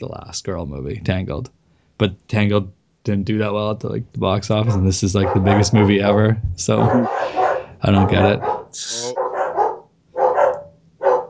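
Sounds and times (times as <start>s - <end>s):
speech: 0.0s - 9.2s
dog barking: 4.7s - 6.2s, 6.8s - 11.2s.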